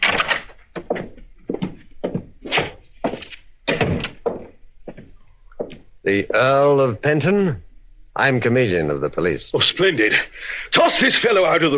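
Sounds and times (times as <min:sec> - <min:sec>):
door opening: 0:00.0 - 0:01.8, 0:03.7 - 0:05.1
dull thunks and knocks: 0:00.0 - 0:05.8
speech: 0:06.1 - 0:07.6, 0:08.2 - 0:11.7.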